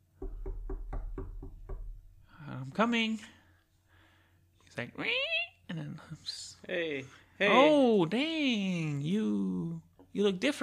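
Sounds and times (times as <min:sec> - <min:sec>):
knocking on a door: 0:00.0 - 0:02.3
speech: 0:02.6 - 0:03.4, 0:04.8 - 0:10.6.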